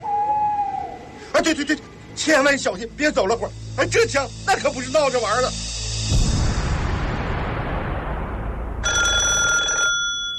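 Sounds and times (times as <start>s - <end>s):
broad rushing noise: 0.0s - 9.3s
speech: 1.4s - 5.7s
telephone bell ringing in a metallic burst: 8.8s - 10.3s.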